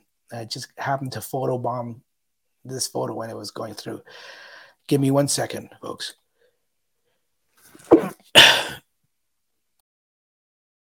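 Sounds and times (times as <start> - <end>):
speech: 0.3 - 6.2
person sneezing: 7.8 - 8.8.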